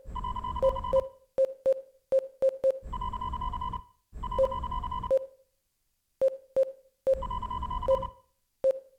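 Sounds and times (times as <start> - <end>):
tactical computer beep sequence: 0.2 - 1.8, 2.4 - 5.3, 6.2 - 8.8.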